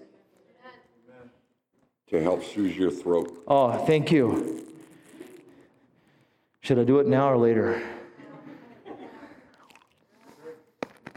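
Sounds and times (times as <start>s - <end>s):
speech: 2.1s - 4.6s, 6.7s - 8.0s
crunching and chewing right against the microphone: 3.0s - 5.7s, 9.5s - 11.1s.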